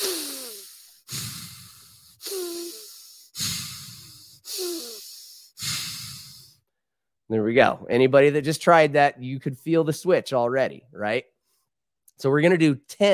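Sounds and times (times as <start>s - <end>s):
deep warrior's breath in and out through the nose from the belly: 0.0s - 6.6s
speech: 7.3s - 11.3s, 12.2s - 13.1s.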